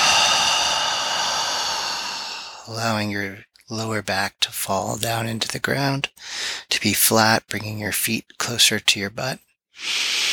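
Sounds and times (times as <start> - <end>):
person inhaling while lying back during a floor exercise: 0.0 - 2.7, 6.2 - 6.7, 9.8 - 10.3
speech: 2.7 - 10.2.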